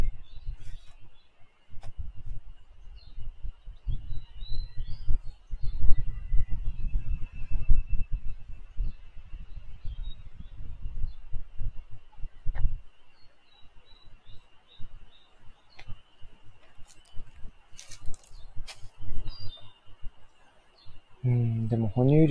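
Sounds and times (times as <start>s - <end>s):
faint chirps: 0.0s - 22.2s
cicadas buzzing: 8.9s - 22.2s
speech: 21.9s - 22.2s.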